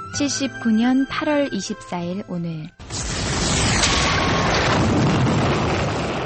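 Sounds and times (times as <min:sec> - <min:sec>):
speech: 0:00.2 - 0:02.8
volcanic eruption roar: 0:02.8 - 0:06.2.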